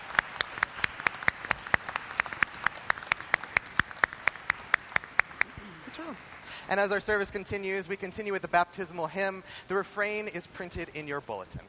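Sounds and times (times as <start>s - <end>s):
few pairs of hands clapping in a reverberant room: 0.0s - 6.5s
speech: 6.1s - 11.6s.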